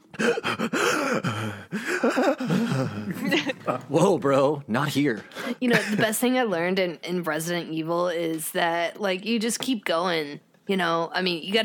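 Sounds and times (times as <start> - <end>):
heavy ragged breathing: 0.0 - 3.2
voiced gasps: 0.1 - 3.0
laughter: 1.7 - 3.9, 5.6 - 6.1
speech: 2.0 - 11.6.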